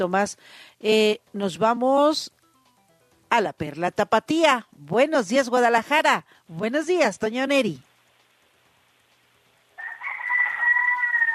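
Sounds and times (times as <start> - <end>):
speech: 0.0 - 2.4, 3.3 - 7.9
rooster crowing: 9.8 - 11.3.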